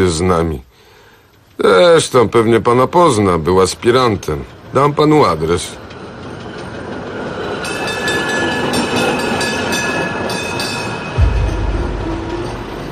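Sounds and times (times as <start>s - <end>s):
speech: 0.1s - 0.7s, 1.6s - 5.8s
tram rumbling along its rails: 1.3s - 12.9s
heavy low thump: 11.2s - 12.9s.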